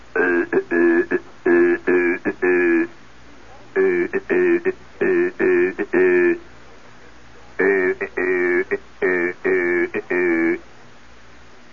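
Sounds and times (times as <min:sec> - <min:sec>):
harsh buzzy raw AC Morse code CW radio signal on earphones: 0:00.0 - 0:03.0, 0:03.7 - 0:06.6, 0:07.4 - 0:10.6.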